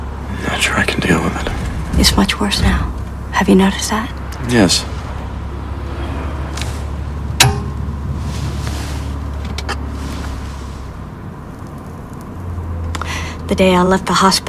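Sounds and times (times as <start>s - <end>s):
cars swishing past: 0.0s - 13.8s
steady street traffic rumbling: 0.0s - 14.4s
speech: 0.6s - 5.0s, 13.5s - 14.4s
sharp thump: 7.4s - 7.9s.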